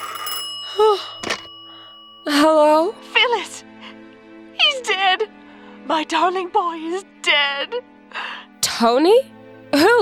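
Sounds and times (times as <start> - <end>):
telephone ringing: 0.0 - 2.8
speech: 5.9 - 8.2, 8.8 - 9.9.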